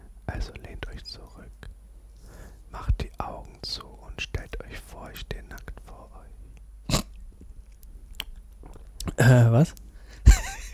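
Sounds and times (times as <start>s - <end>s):
soft hiss: 0.0s - 10.7s
wet lip smacks and mouth clicks for ASMR: 7.1s - 9.2s
speech: 9.2s - 9.8s.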